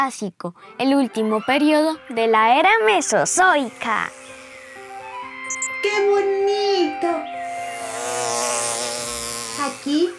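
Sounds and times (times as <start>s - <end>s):
speech: 0.0s - 4.3s, 5.8s - 7.3s, 9.6s - 10.1s
bees buzzing: 2.1s - 10.1s.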